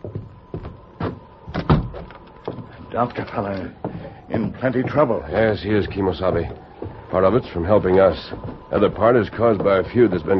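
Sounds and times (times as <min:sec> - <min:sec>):
door being closed and locked: 0:01.0 - 0:02.6
speech: 0:02.9 - 0:10.3.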